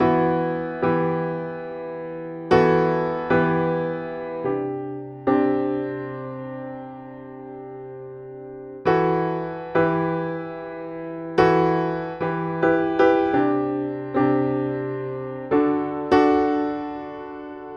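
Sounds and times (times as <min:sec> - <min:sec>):
country piano: 0:00.0 - 0:17.7.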